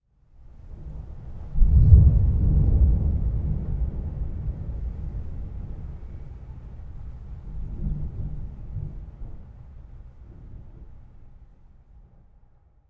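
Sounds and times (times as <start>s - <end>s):
distant thunder: 0.9s - 11.2s.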